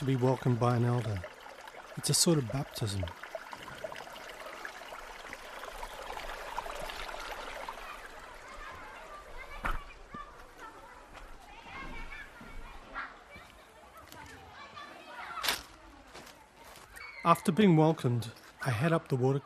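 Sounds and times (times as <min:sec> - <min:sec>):
speech: 0:00.0 - 0:01.3, 0:02.0 - 0:03.2, 0:17.3 - 0:19.4
steady rush of flowing river water: 0:00.0 - 0:09.2
sharp splashes of kids jumping from a rock into a pool: 0:00.0 - 0:10.0
children shouting and chattering by a river: 0:07.1 - 0:17.7.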